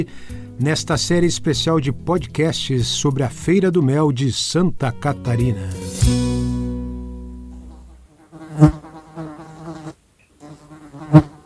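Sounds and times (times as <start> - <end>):
speech: 0.0 - 6.4
bee buzzing: 7.5 - 11.4.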